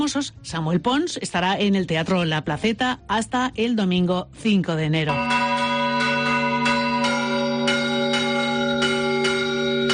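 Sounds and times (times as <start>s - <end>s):
speech: 0.0s - 5.7s
large cathedral tower church bells rung by hand: 5.1s - 9.9s.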